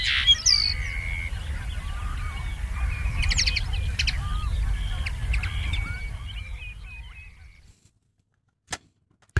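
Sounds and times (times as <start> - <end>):
steady low rumble of noise: 0.0 - 7.7
common linnet singing: 0.0 - 7.8.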